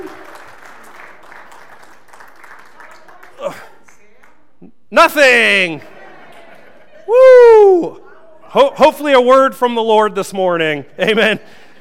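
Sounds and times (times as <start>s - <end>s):
crowd applause: 0.0s - 4.1s
speech: 4.9s - 5.9s, 7.1s - 11.6s
laughter: 5.7s - 8.6s, 11.0s - 11.8s
person whooping or shouting: 7.1s - 8.1s.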